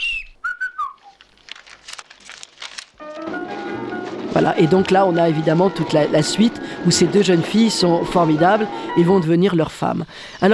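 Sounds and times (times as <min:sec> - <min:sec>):
two people trading bird-like whistled phrases: 0:00.0 - 0:01.2
crinkly rustling: 0:01.0 - 0:09.2
speech: 0:04.4 - 0:10.5.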